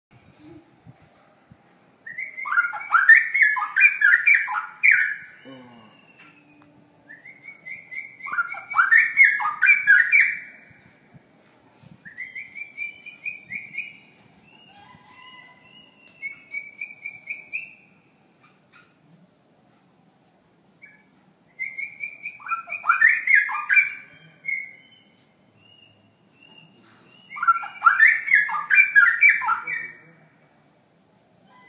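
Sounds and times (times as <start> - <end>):
straw-headed bulbul singing: 2.1 - 10.9, 12.1 - 18.2, 20.8 - 30.1.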